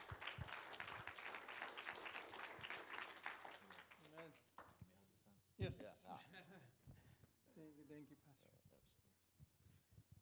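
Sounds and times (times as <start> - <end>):
audience applause: 0.0 - 4.2
speech: 5.6 - 6.8, 7.6 - 9.3.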